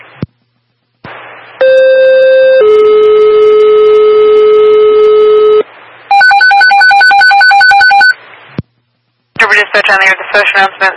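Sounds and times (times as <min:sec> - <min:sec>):
electronic telephone ringing: 0:02.6 - 0:08.2
speech: 0:09.7 - 0:10.9.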